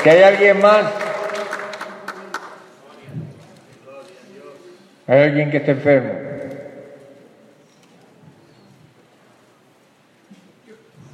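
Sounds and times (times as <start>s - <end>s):
speech: 0.0s - 1.0s, 5.1s - 6.3s
church audience applauding: 0.0s - 2.9s.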